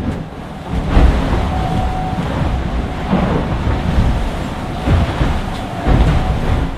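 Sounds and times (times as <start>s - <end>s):
deep hull rumbles of an IMOCA 60-foot monohull racing sailboat: 0.0s - 6.7s
water rushing past a 60-foot monohull racing sailboat at sea: 0.0s - 6.7s
wind roaring inside a 60-foot monohull racing sailboat at sea: 0.0s - 6.7s.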